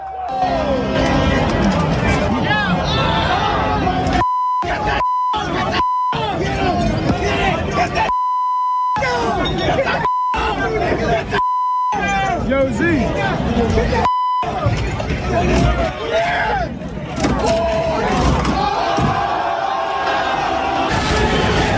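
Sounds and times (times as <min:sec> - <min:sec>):
rioting crowds shouting and chattering in New York City streets: 0:00.0 - 0:21.7
loud steady censor bleep: 0:04.2 - 0:06.2, 0:08.1 - 0:09.1, 0:10.0 - 0:10.4, 0:11.4 - 0:12.1, 0:14.1 - 0:14.5.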